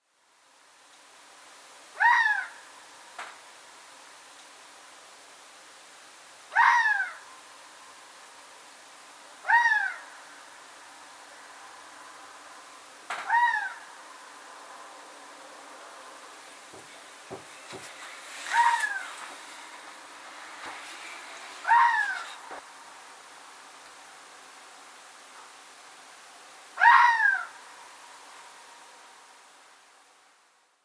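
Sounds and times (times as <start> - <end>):
fox calling: 2.0 - 2.6, 6.5 - 7.2, 9.4 - 10.1, 13.2 - 14.0, 18.5 - 19.4, 21.6 - 22.6, 26.8 - 27.6.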